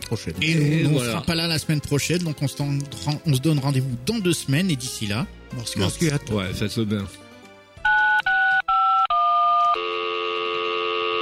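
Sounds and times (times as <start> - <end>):
speech: 0.1 - 7.2
telephone keypad dialing tones: 7.9 - 9.8
steady telephone tone of a call reaching an answering machine: 7.9 - 11.2.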